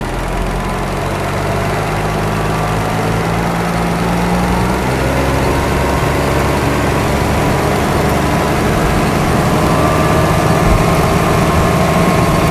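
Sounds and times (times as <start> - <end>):
engine accelerating: 0.0 - 12.4.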